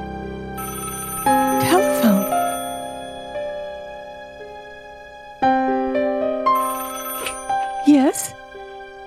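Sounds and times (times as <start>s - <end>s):
inter-cabin telephone ringing: 0.6s - 4.1s, 6.5s - 8.4s.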